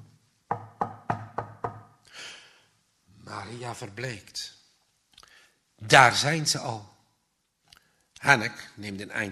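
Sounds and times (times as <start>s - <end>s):
loud knocks on a wooden back door: 0.5s - 2.0s
speech: 3.3s - 4.6s, 5.8s - 7.0s, 8.2s - 9.3s.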